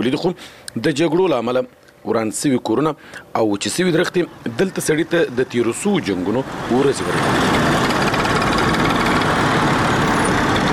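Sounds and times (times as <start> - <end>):
speech: 0.0 - 7.6
old motorcycle engine running in rural Afghanistan: 7.0 - 10.7.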